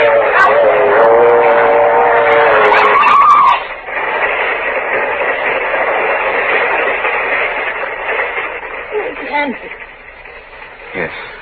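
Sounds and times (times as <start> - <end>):
loud sustained train horn blast: 0.0 - 3.1
people shouting: 0.0 - 3.7
heavy rumbling roar of an approaching locomotive: 0.0 - 11.4.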